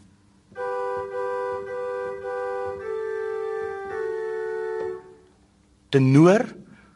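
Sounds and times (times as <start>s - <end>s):
soprano and alto hymn parts played as two-note chords on a keyboard: 0.0s - 5.2s
speech: 5.9s - 6.6s.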